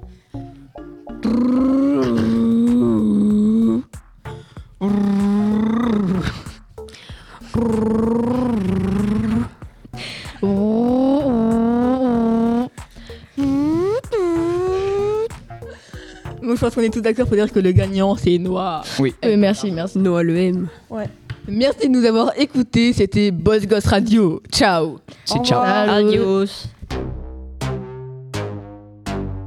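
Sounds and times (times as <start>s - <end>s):
people making vocal car engine noises in a mini-game: 1.2s - 3.9s, 4.8s - 6.6s, 7.4s - 9.6s, 10.3s - 15.4s
speech: 1.3s - 1.9s, 16.6s - 26.7s.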